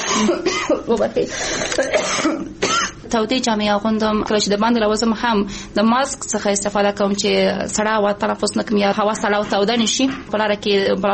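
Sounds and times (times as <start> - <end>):
person coughing: 0.0 - 3.0
speech: 0.2 - 11.1.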